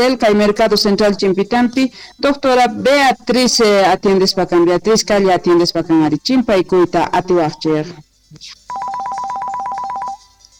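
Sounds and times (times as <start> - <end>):
speech: 0.0 - 8.9
electronic telephone ringtone with rapid warbling beeps: 8.7 - 10.5.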